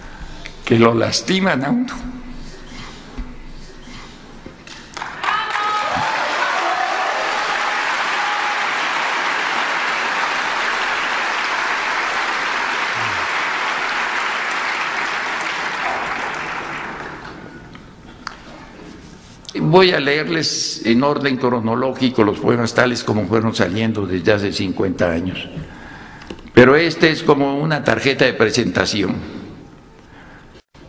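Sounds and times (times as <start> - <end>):
speech: 0.7 - 2.2, 19.8 - 25.8, 26.6 - 29.4
audience applauding at a poetry reading: 4.7 - 17.7.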